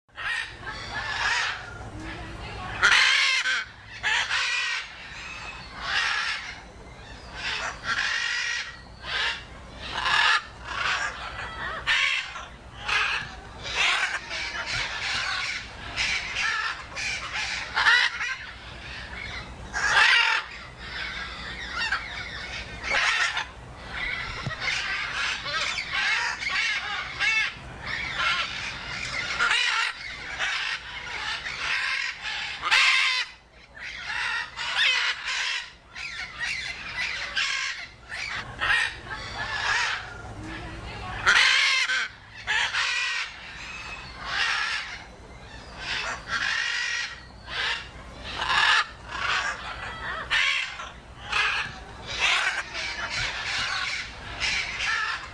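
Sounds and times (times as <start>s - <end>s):
macaw parrot: 0.1s - 55.3s.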